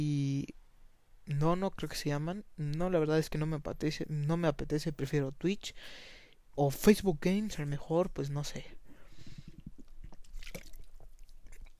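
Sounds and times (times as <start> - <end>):
speech: 1.3 - 8.8
person drinking water: 9.0 - 11.7
quick wet gulps and swallows: 9.2 - 11.7.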